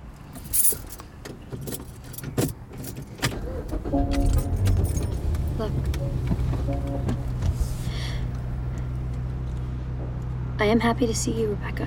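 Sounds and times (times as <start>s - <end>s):
car engine cranking and idling: 0.1s - 11.8s
car keys jingling: 0.2s - 7.4s
speech: 5.6s - 7.3s, 10.6s - 11.8s.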